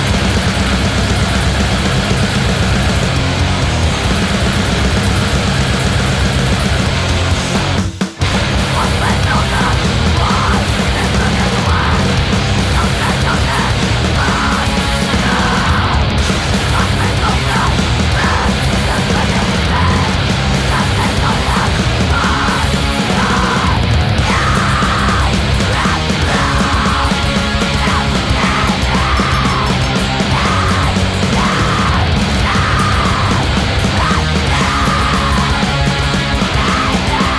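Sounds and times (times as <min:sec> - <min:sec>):
distorted punk rock guitars: 0:00.0 - 0:37.3
pounding punk rock drums: 0:00.0 - 0:37.3
woman screaming punk rock vocals: 0:08.7 - 0:12.1, 0:16.7 - 0:35.7, 0:36.5 - 0:37.3.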